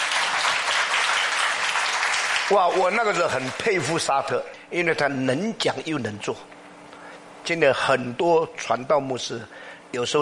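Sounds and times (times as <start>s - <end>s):
audience applause: 0.0s - 3.9s
speech: 2.5s - 6.6s, 7.5s - 10.2s.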